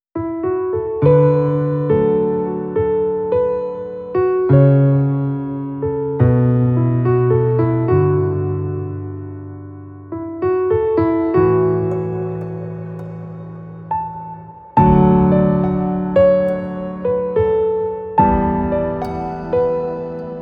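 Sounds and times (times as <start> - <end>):
piano piece: 0.2 - 20.3.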